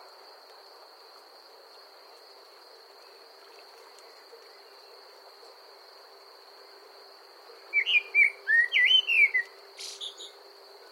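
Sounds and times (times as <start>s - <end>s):
common blackbird singing: 7.7s - 10.4s.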